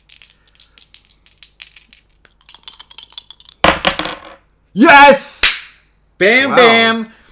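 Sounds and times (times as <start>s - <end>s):
two dice rolling on a hard table: 0.0s - 4.4s
speech: 4.8s - 5.3s, 6.2s - 7.2s.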